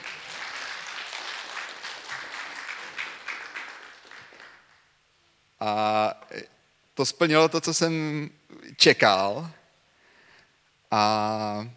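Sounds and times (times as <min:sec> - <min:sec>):
crowd applauding: 0:00.0 - 0:04.9
speech: 0:05.6 - 0:09.6, 0:10.9 - 0:11.7.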